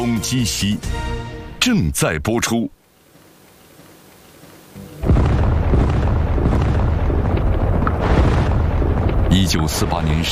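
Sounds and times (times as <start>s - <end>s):
speech: 0.0s - 2.8s, 9.4s - 10.3s
artillery bombardment explosions as a drama sound effect: 5.0s - 10.3s.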